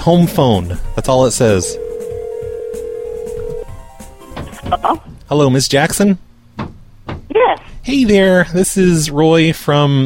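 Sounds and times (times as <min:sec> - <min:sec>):
speech: 0:00.0 - 0:01.8, 0:04.8 - 0:06.3, 0:07.9 - 0:10.0
ringback tone of an outgoing telephone call to a home phone: 0:01.5 - 0:03.7.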